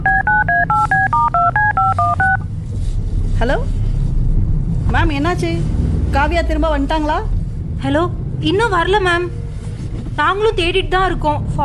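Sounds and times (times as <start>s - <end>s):
telephone keypad tones as a number is dialed on a phone: 0.0s - 2.5s
low hum: 0.0s - 11.6s
speech: 3.4s - 3.8s, 4.9s - 9.4s, 10.2s - 11.6s.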